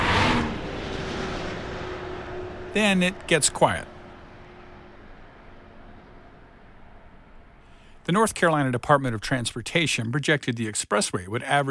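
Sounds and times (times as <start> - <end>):
vehicle roaring past on a highway: 0.0 - 8.1
speech: 2.8 - 3.9, 8.1 - 11.6.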